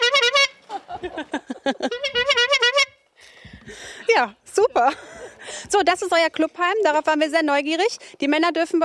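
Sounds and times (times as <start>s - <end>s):
car horn honking: 0.0s - 0.6s, 1.9s - 3.0s
laughter: 0.6s - 2.1s, 3.8s - 5.7s
speech: 4.2s - 8.8s.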